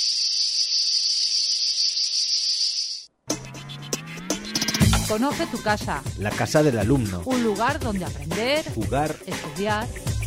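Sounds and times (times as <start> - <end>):
cicada buzzing: 0.0 - 3.1
speech: 5.1 - 10.1.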